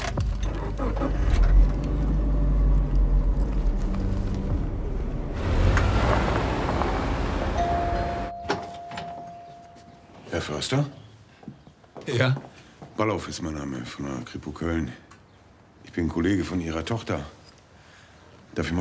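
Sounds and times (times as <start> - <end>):
car engine driving off: 0.4 - 8.3
brief high tone: 7.6 - 10.1
speech: 10.4 - 11.0, 12.1 - 15.0, 16.0 - 17.4, 18.6 - 18.7.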